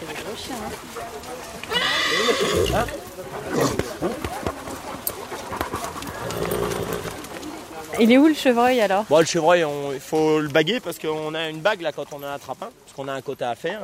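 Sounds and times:
speech: 0.4s - 4.3s, 8.0s - 13.8s
horse neighing: 1.7s - 3.9s, 6.1s - 7.2s
hunting dogs panting: 3.4s - 7.5s.

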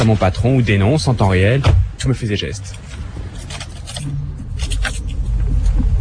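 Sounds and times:
speech: 0.0s - 3.0s
work car engine rumbling as it pulls away: 0.0s - 5.9s.

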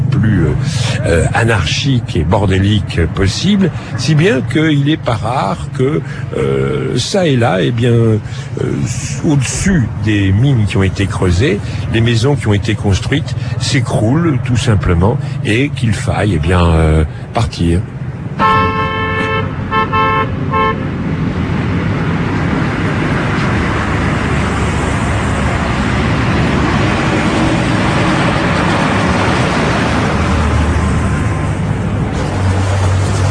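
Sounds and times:
dense street traffic in a narrow alley in Iran: 0.0s - 33.2s
old, battered truck: 0.0s - 33.2s
speech: 0.2s - 18.8s
car horn honks in a narrow alley in Iran: 18.4s - 20.9s.

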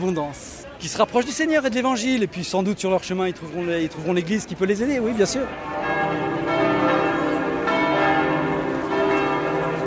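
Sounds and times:
speech: 0.0s - 5.9s
church bells ringing in a carillon peal: 5.0s - 9.8s.

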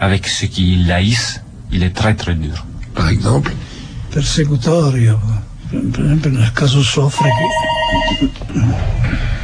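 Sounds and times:
speech: 0.0s - 9.3s
electronic telephone ring from an incoming call: 7.2s - 8.4s.

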